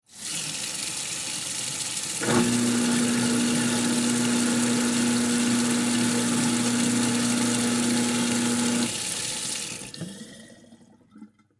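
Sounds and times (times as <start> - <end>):
household garbage disposal running with water on: 0.1 - 11.5.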